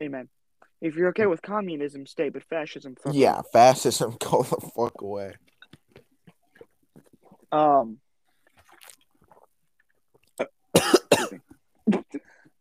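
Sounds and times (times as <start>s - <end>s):
speech: 0.0s - 5.5s, 7.5s - 8.0s, 10.4s - 11.0s
cat coughing in harsh rasping bursts: 10.4s - 12.3s.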